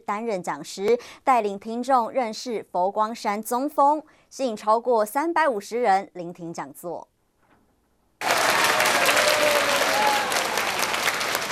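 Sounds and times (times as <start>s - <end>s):
speech: 0.1s - 7.1s
audience applauding: 8.2s - 11.5s.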